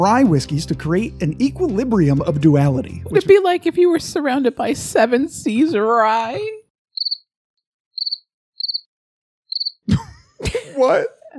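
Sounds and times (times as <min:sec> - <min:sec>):
speech: 0:00.0 - 0:06.6, 0:09.9 - 0:11.3
cricket chirping in quick pulsed trills: 0:07.0 - 0:07.2, 0:08.0 - 0:08.9, 0:09.5 - 0:09.8.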